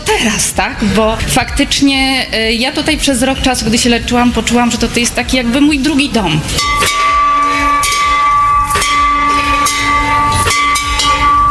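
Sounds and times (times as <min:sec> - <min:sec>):
speech: 0:00.2 - 0:07.0
loud metal bell struck: 0:06.5 - 0:11.4.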